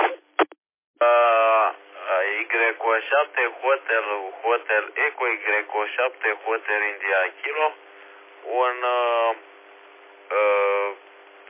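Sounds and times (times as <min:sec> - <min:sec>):
tinny amateur radio transmission from a mobile station carrying a voice: 0:01.0 - 0:07.8, 0:08.4 - 0:09.4, 0:10.3 - 0:11.4
speech: 0:02.6 - 0:09.5.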